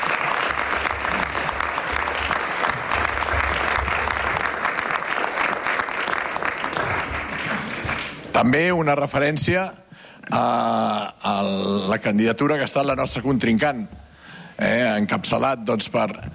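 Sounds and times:
sizable crowd applauding: 0.0s - 8.3s
speech: 8.4s - 14.0s, 14.6s - 16.3s.

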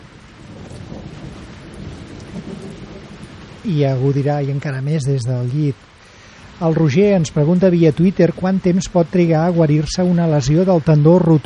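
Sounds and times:
deep continuous rumble of thunder: 0.0s - 5.1s
steady rain pouring: 0.0s - 11.4s
speech: 3.6s - 5.9s, 6.6s - 11.4s.

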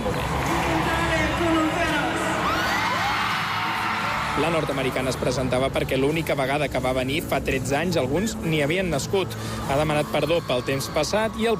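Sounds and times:
huge stadium crowd in Madrid screaming and cheering for a pop star: 0.0s - 6.4s, 8.9s - 11.5s
speech: 4.4s - 11.5s.

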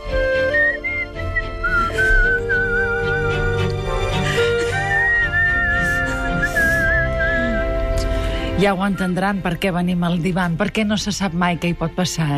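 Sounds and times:
full instrumental backing: 0.0s - 12.3s
man whistling a high warbling melody with vibrato: 0.2s - 3.7s, 4.6s - 7.8s
speech: 8.6s - 12.3s.

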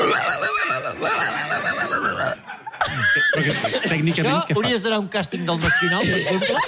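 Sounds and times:
person vocally imitating a pig squealing and grunting: 0.0s - 2.4s
laughter: 2.0s - 5.0s, 5.6s - 6.6s
speech: 3.4s - 6.6s.

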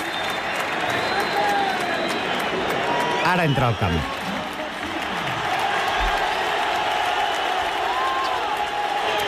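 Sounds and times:
large stadium crowd whistling and booing a goalkeeper: 0.0s - 9.2s
speech: 3.3s - 4.2s.

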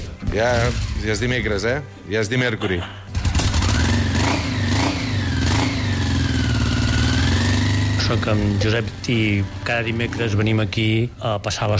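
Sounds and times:
speech: 0.3s - 3.0s, 8.1s - 11.7s
Honda Africa Twin motorcycle engine revving: 0.4s - 1.5s, 3.1s - 11.2s
Honda Africa Twin motorcycle engine idling with a steady rumble: 3.1s - 11.1s.

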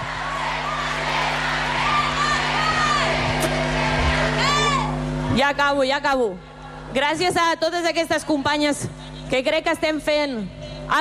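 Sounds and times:
crowd of fans shouting at a women's football title celebration: 0.0s - 5.2s
speech: 5.4s - 10.9s.

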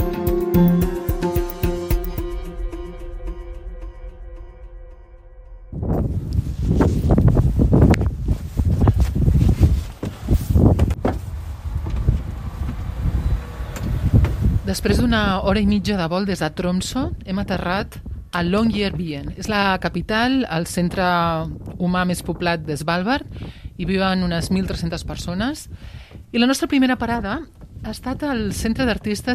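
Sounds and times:
soft tonal music: 0.0s - 7.6s
speech: 0.6s - 0.9s, 14.8s - 29.3s
strong cold wind roaring and gusting against the microphone: 5.7s - 29.3s.

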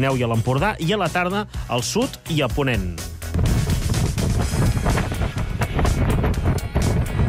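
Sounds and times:
speech: 0.0s - 3.6s
strong gusting wind during a wind alert in Catalonia: 3.3s - 7.2s.

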